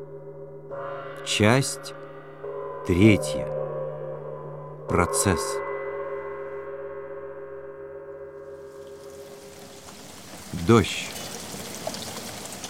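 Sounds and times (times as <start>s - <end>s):
speech: 0.0s - 2.0s, 2.8s - 3.5s, 4.9s - 5.6s, 10.5s - 11.2s
low sustained tonal drone: 0.0s - 10.0s
steady rain hissing: 8.6s - 12.6s.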